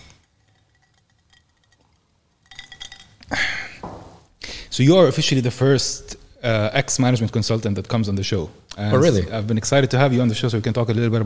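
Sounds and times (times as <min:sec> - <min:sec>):
glasses knocking together in a toast: 0:00.0 - 0:03.8
speech: 0:04.8 - 0:11.2.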